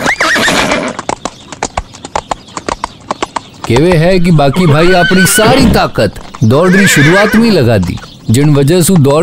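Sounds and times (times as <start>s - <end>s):
horse whinnying: 0.0s - 1.0s, 4.2s - 7.6s
horse hooves galloping: 0.0s - 9.2s
speech: 3.7s - 9.2s.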